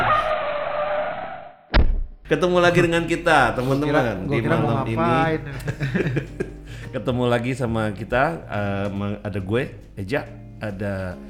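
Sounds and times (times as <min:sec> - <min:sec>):
car braking hard with tire screech: 0:00.0 - 0:01.6
laughter: 0:02.3 - 0:07.4
speech: 0:02.3 - 0:11.2.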